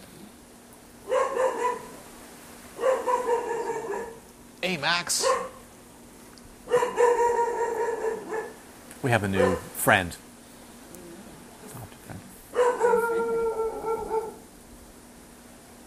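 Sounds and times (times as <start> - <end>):
dog barking and yowling: 1.0 - 2.0, 2.8 - 4.3, 5.1 - 5.7, 6.6 - 8.6, 9.3 - 9.8, 12.5 - 14.5
speech: 4.7 - 5.5, 9.0 - 10.3.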